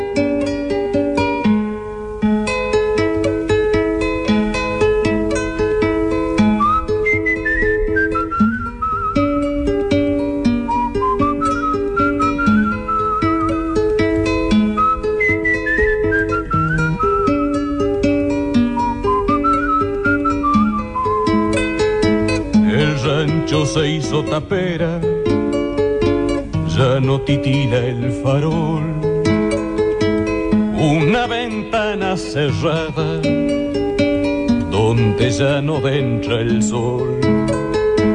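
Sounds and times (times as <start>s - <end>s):
instrumental music: 0.0s - 38.1s
soft tired whistled melody: 6.3s - 9.8s, 10.4s - 23.9s
speech: 27.0s - 29.0s, 32.1s - 33.4s, 34.9s - 37.5s.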